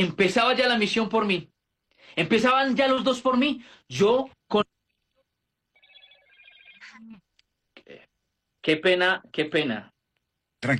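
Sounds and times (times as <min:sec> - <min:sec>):
speech: 0:00.0 - 0:01.5, 0:02.1 - 0:04.7, 0:08.6 - 0:09.9, 0:10.6 - 0:10.7
telephone ringing with an electronic trill: 0:05.7 - 0:07.1.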